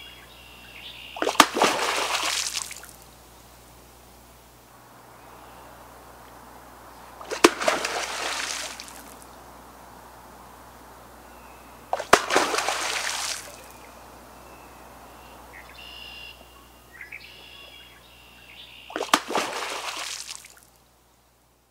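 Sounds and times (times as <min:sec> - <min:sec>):
beaver tail noise: 0:01.2 - 0:03.2, 0:05.1 - 0:16.6, 0:18.9 - 0:20.6.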